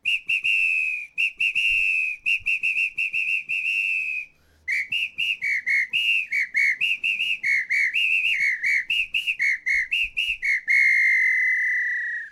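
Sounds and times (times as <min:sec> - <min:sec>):
whistle: 0:00.0 - 0:12.3.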